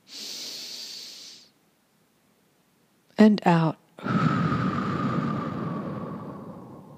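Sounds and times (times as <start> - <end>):
deep breath in during a guided breathing exercise: 0.0 - 1.5, 4.0 - 6.9
speech: 3.2 - 4.2.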